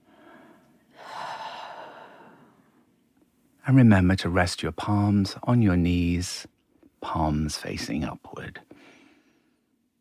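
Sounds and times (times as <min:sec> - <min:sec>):
deep breathing in through the nose and out through the mouth for a relaxation exercise: 0:00.0 - 0:02.9, 0:08.7 - 0:09.7
speech: 0:03.7 - 0:08.6.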